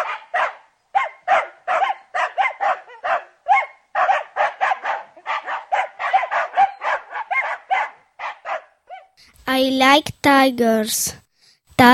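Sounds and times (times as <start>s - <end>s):
dog barking: 0.0s - 9.2s
speech: 9.5s - 11.2s, 11.8s - 11.9s.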